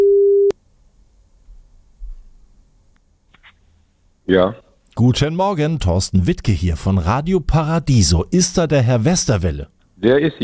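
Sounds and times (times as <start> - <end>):
loud steady telephone ringback tone: 0.0 - 0.5
speech: 4.3 - 10.4.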